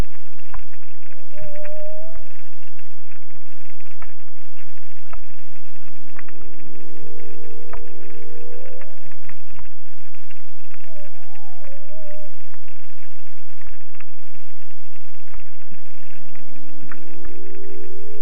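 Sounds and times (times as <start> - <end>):
steady underwater crackling and popping: 0.0 - 18.1
humpback whale song: 1.2 - 2.3.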